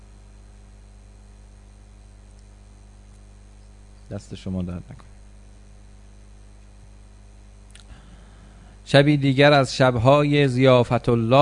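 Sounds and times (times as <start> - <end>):
air coolers humming electrically in a room: 0.0 - 11.4
speech: 4.1 - 5.2, 8.9 - 11.4.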